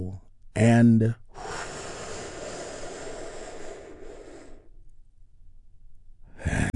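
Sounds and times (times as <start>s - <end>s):
speech: 0.1s - 1.5s
deep breath drawn in and released during a guided relaxation: 1.3s - 4.8s.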